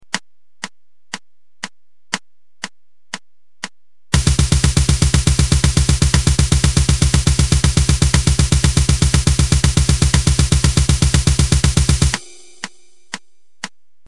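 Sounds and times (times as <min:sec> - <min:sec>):
hammer blast: 0:04.1 - 0:13.0.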